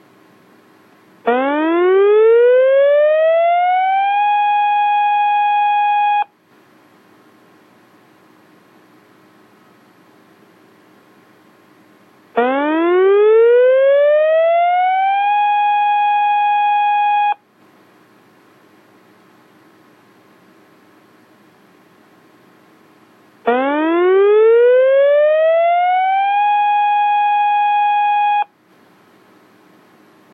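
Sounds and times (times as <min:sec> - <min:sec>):
electronic siren: 0:01.3 - 0:06.3, 0:12.4 - 0:17.4, 0:23.5 - 0:28.5.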